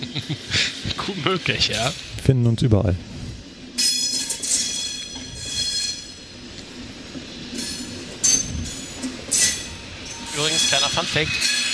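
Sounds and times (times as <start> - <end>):
laughter: 0.0 - 1.0
speech: 0.2 - 3.1, 11.0 - 11.6
ICE high-speed train rolling through a railway depot: 0.3 - 11.7
ICE high-speed train metallic wheel squeal: 3.8 - 6.5, 7.5 - 11.7.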